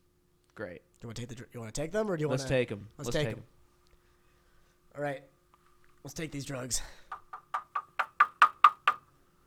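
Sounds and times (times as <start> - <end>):
speech: 0.6 - 3.6, 5.0 - 5.3, 6.0 - 7.0
knocking on a door: 7.1 - 9.0.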